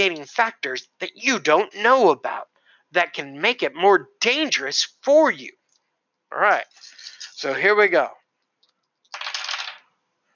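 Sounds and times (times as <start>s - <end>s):
speech: 0.0s - 5.6s, 6.3s - 8.2s
dice clattering onto a hard table surface: 9.0s - 9.9s.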